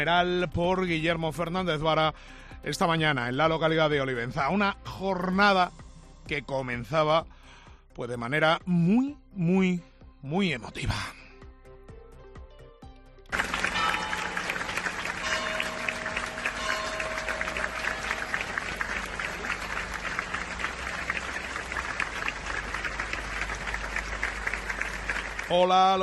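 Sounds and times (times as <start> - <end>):
speech: 0.0 - 7.4, 8.0 - 11.2, 25.5 - 26.0
large crowd applauding for arriving coffin: 13.3 - 26.0.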